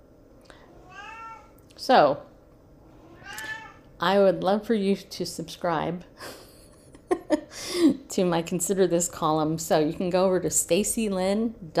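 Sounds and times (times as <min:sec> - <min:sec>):
cat meowing: 0:00.8 - 0:01.6, 0:03.0 - 0:03.8
speech: 0:01.8 - 0:02.3, 0:04.0 - 0:06.2, 0:07.8 - 0:11.7.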